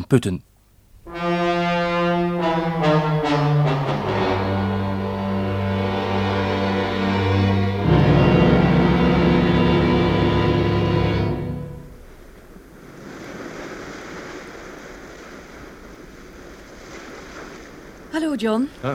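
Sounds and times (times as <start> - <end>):
speech: 0.0 - 0.5, 18.4 - 18.9
loud droning tone: 1.1 - 12.2
sea water washing alongside a ship: 1.2 - 18.9.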